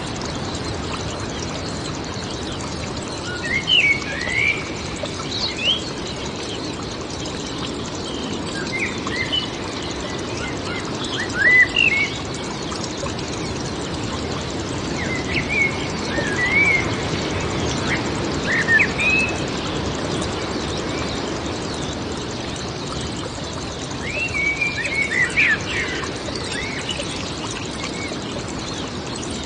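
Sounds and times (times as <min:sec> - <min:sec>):
birds chirping and whistling: 0:00.0 - 0:13.8, 0:15.0 - 0:17.1, 0:22.5 - 0:29.4
wind moving through the woods: 0:00.0 - 0:29.4.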